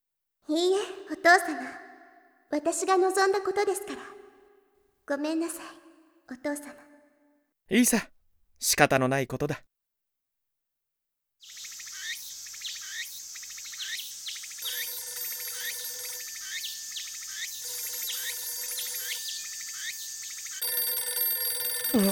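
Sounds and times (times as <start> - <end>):
speech: 0.5 - 1.8, 2.5 - 4.2, 5.1 - 6.9, 7.7 - 9.7, 22.0 - 22.1
constant high chirping background: 11.4 - 21.2, 21.8 - 22.1
telephone ringing in a warbling trill: 14.6 - 22.1.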